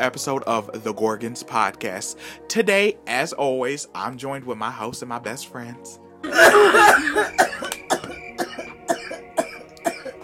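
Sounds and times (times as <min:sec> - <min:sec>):
speech: 0:00.0 - 0:07.6
person clearing throat: 0:06.2 - 0:10.2.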